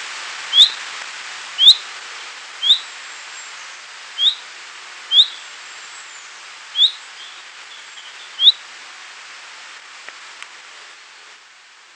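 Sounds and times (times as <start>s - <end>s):
light hiss: 0.0s - 11.9s
Common chaffinch Fringilla coelebs call notes: 0.5s - 0.8s, 1.6s - 1.9s, 2.6s - 3.0s, 4.2s - 4.5s, 5.1s - 5.5s, 6.2s - 8.6s.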